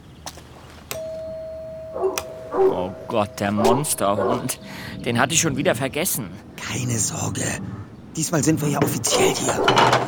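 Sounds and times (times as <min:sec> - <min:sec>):
electronic doorbell ringing at a house's front door: 0:01.0 - 0:04.9
speech: 0:02.0 - 0:10.0.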